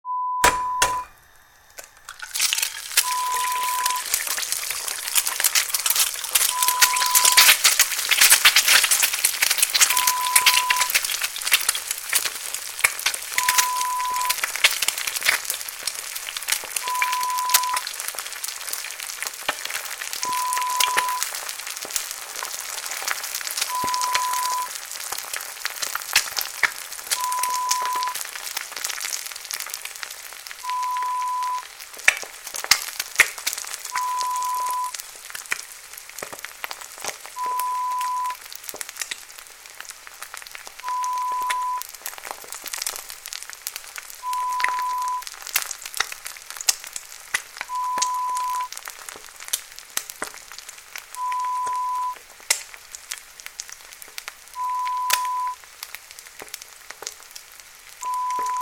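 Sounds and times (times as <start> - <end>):
egg frying: 0.4 - 58.6.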